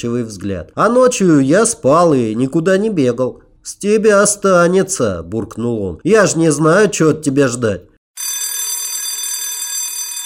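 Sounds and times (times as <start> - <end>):
speech: 0.0 - 7.9
electric school bell ringing to call pupils into class: 8.2 - 10.2.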